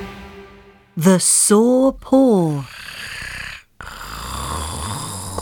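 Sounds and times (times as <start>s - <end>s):
speech: 1.1s - 2.7s
sleeping tiger snoring: 2.6s - 5.4s.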